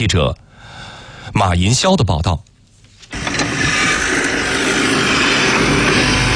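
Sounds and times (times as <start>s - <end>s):
speech: 0.0s - 0.4s, 1.3s - 2.5s
high-horsepower tractor engine roaring while pulling a seeder: 3.1s - 6.3s.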